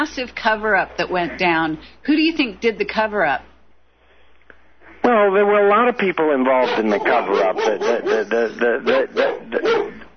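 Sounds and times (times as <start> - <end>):
speech: 0.0 - 3.5, 5.0 - 10.0
pet dog barking: 6.6 - 10.1.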